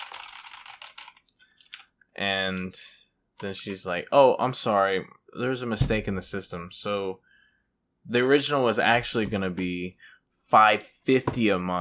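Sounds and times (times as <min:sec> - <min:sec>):
typing on a computer keyboard: 0:00.0 - 0:01.9
speech: 0:02.2 - 0:07.3, 0:08.0 - 0:11.7.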